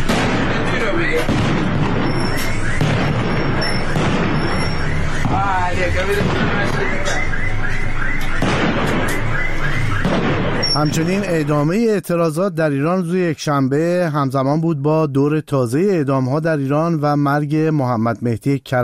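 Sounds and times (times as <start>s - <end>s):
rapid continuous gunfire at a protest gathering in Sanandaj Iran: 0.0s - 11.5s
loud blasts at a protest gathering in Sanandaj Iran: 0.0s - 11.8s
whistling shrieks: 2.0s - 8.3s, 10.6s - 11.1s
speech: 10.8s - 18.8s.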